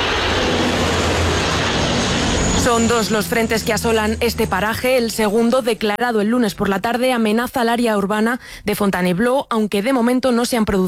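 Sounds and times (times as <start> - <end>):
tanker aircraft engines roaring while fighting a forest fire southeast of Paris France: 0.0 - 5.9
speech: 2.7 - 10.8.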